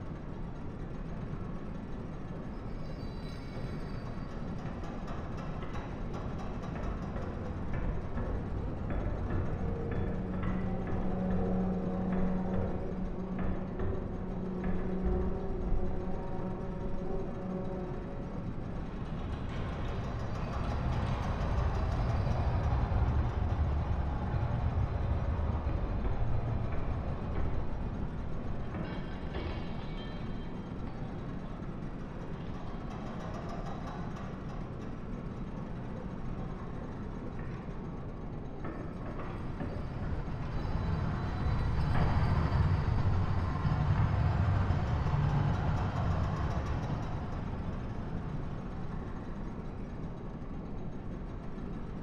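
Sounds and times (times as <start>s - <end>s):
background ambience: 0.0s - 52.0s.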